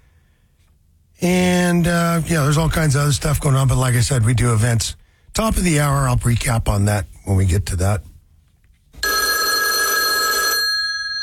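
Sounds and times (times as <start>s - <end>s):
speech: 1.2s - 8.1s
old-fashioned telephone bell ringing: 9.0s - 11.2s.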